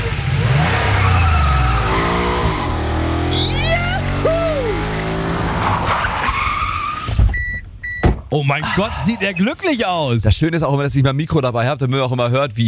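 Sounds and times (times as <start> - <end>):
car accelerating past a speed camera on a 50 km/h town street in Schleswig: 0.0 - 6.8
speech: 8.3 - 12.6.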